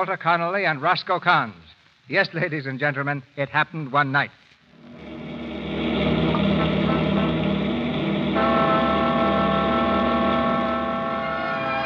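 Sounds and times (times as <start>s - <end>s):
speech: 0.0s - 4.4s
cross-country motor bus engine rumbling and revving: 4.9s - 11.7s.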